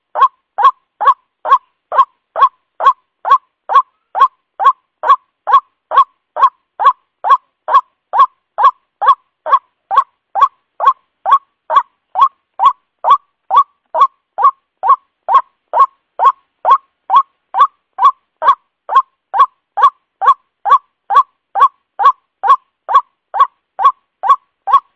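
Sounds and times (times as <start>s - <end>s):
white-breasted waterhen lure call of nasal upward-inflected notes: 0.0s - 24.9s.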